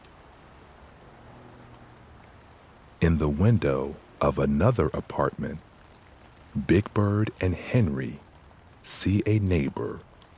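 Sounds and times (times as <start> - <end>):
rain streaming down window glass: 0.0 - 10.3
speech: 3.0 - 5.7, 6.6 - 8.2, 8.8 - 10.1.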